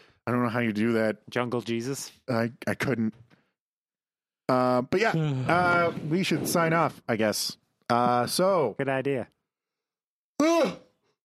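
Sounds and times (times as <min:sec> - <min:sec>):
speech: 0:00.3 - 0:03.3, 0:04.5 - 0:09.4
person yawning: 0:05.1 - 0:05.8.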